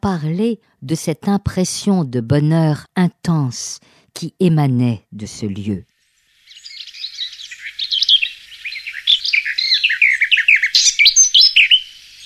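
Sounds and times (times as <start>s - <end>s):
speech: 0.0s - 5.9s
lesser whitethroat warbler singing a scratchy chattering warble: 6.4s - 12.2s.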